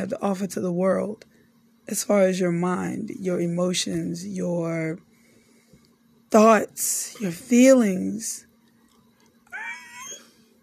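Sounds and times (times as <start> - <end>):
speech: 0.0 - 5.1, 6.3 - 8.5
low steady hum: 0.0 - 10.6
dog giving a drawn-out whiny call: 9.5 - 10.4.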